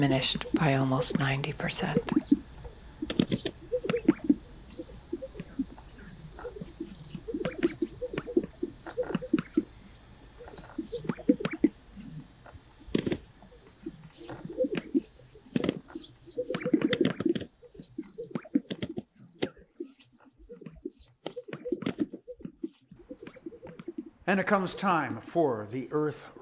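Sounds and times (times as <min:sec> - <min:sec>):
speech: 0:00.0 - 0:02.3, 0:24.3 - 0:26.4
Greater Sage-Grouse bubbling and gurgling with sharp popping bursts: 0:02.0 - 0:09.7, 0:10.4 - 0:12.2, 0:12.9 - 0:24.2.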